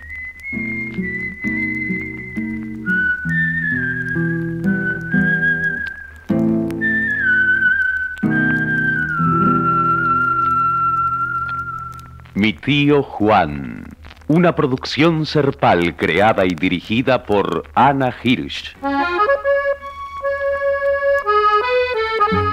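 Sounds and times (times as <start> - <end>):
man softly whistling a melody while walking away: 0.0 - 12.2
speech: 1.0 - 1.2, 12.4 - 18.9
soft instrumental accompaniment of sustained chords: 18.8 - 22.5.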